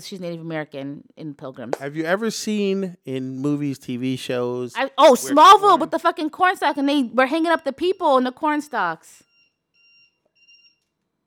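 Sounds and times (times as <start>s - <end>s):
speech: 0.0s - 9.3s
timer alarm beeping with high-pitched electronic tone: 5.3s - 10.8s.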